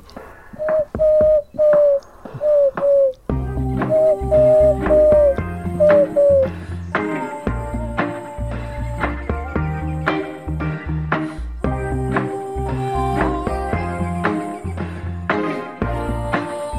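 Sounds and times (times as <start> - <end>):
wood pigeon five-note cooing phrase: 0.0 - 6.5
full musical backing with a steady bass: 3.2 - 16.7.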